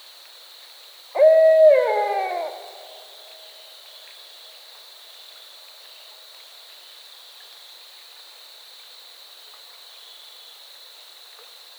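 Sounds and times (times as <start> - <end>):
barred owl hooting with descending wavering tail: 1.2 - 3.1.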